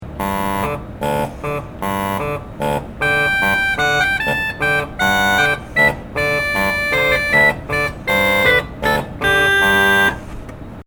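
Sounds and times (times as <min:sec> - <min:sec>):
reed pipes: 0:00.0 - 0:10.3.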